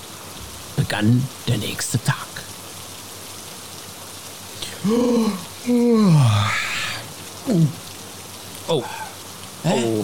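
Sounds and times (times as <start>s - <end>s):
steady rain pattering on a tent roof: 0.0s - 10.0s
speech: 0.9s - 2.4s, 4.8s - 6.6s, 7.5s - 7.8s, 8.7s - 9.0s, 9.6s - 10.0s
person groaning sleepily while waking up: 4.6s - 7.9s.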